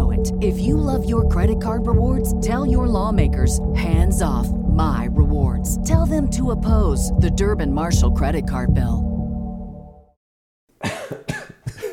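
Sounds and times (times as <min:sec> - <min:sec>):
speech: 0:00.3 - 0:09.1
person coughing harshly: 0:10.8 - 0:11.9.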